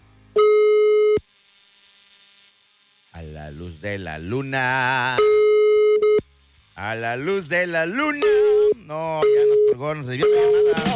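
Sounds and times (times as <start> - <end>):
telephone busy signal after dialing: 0.4 - 1.2, 5.0 - 6.3, 7.9 - 10.9
speech: 3.5 - 5.4, 6.8 - 10.9.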